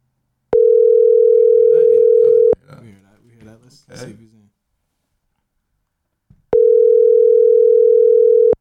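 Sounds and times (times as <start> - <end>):
ringback tones of an outgoing phone call: 0.6 - 2.6, 6.5 - 8.5
person talking: 1.6 - 4.6.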